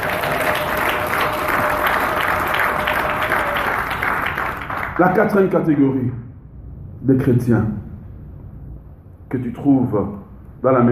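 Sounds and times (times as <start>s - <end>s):
audience applauding: 0.0s - 5.5s
speech: 5.0s - 6.3s, 7.0s - 7.9s, 9.3s - 10.8s.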